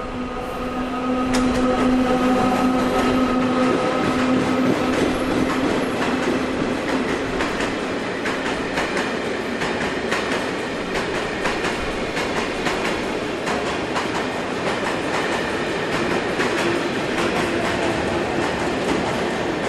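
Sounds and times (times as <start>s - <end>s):
freight train wheel squeal: 0.0s - 6.0s
freight train wheels clacking over rail joints: 0.9s - 19.6s.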